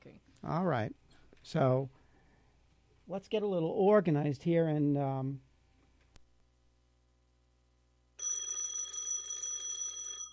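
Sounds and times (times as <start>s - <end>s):
speech: 0.0s - 2.0s, 3.1s - 5.5s
telephone ringing with a loud bright buzzing bell: 8.2s - 10.3s.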